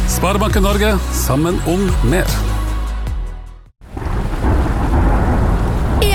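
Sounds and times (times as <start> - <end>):
speech: 0.2 - 2.5
heavy rainfall: 3.8 - 6.1
thunder rumble: 3.8 - 6.1.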